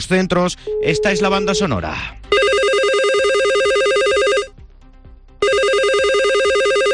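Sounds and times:
speech: 0.0s - 2.3s
telephones ringing unanswered at a health centre in Mérida: 0.7s - 4.5s, 5.4s - 6.9s.

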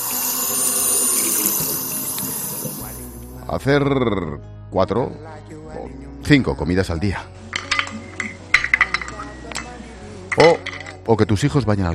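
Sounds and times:
water running from an opened tap: 0.0s - 3.2s
speech: 3.5s - 7.4s, 10.4s - 11.9s.

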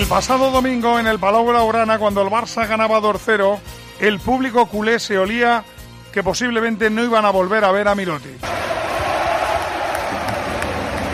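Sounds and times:
speech: 0.1s - 8.7s
basketball arena crowd cheering and applauding in an ovation: 8.4s - 11.1s.

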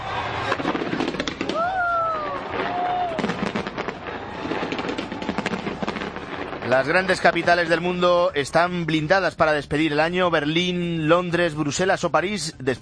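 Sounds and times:
crowd noise: 0.0s - 7.7s
New Year fireworks crackling and booming: 0.0s - 9.4s
speech: 6.7s - 12.8s.

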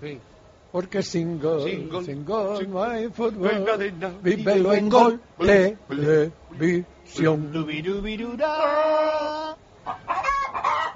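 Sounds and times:
speech: 0.0s - 10.0s
hen squawking and clucking: 9.8s - 10.9s.

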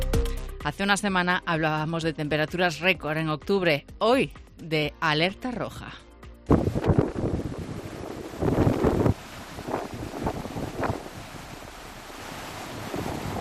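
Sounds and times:
speech: 0.6s - 6.9s
heavy waves crashing and surging at a beach: 6.5s - 13.3s
stormy wind roaring at a beach: 6.5s - 13.3s.

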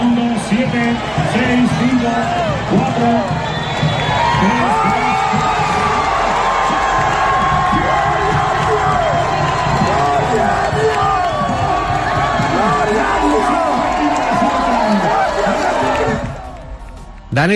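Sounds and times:
large crowd cheering in a town square: 0.0s - 17.5s
whoops and yells: 4.0s - 16.6s
speech: 17.4s - 17.5s.

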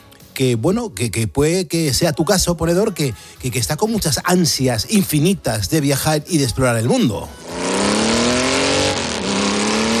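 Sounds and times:
speech: 0.4s - 7.5s
motorcycle engine revving and shifting gear: 7.3s - 9.9s.

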